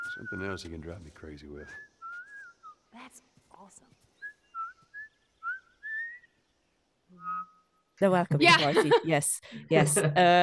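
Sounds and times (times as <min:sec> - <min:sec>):
person whistling a video game theme tune: 0:00.0 - 0:00.6, 0:01.6 - 0:02.8, 0:04.6 - 0:06.2, 0:07.2 - 0:07.6
speech: 0:00.2 - 0:01.9, 0:03.0 - 0:04.0, 0:08.0 - 0:10.4
laughter: 0:08.3 - 0:10.4.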